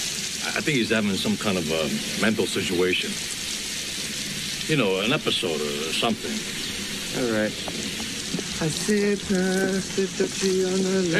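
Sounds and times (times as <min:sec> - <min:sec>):
water spilling and splashing over a man: 0:00.0 - 0:11.1
speech: 0:00.6 - 0:03.4, 0:04.7 - 0:08.0, 0:08.6 - 0:11.1
man exclaiming: 0:08.7 - 0:11.1.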